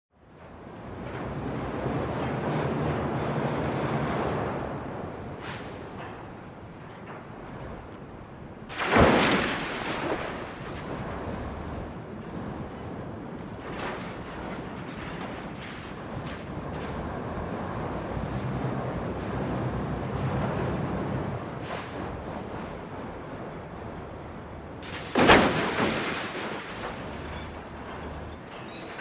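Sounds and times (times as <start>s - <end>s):
building demolition noise at a construction site: 0.2s - 29.0s.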